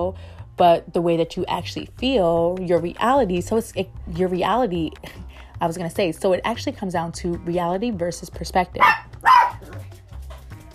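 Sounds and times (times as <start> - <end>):
speech: 0.1 - 9.0
dog barking: 8.8 - 9.8.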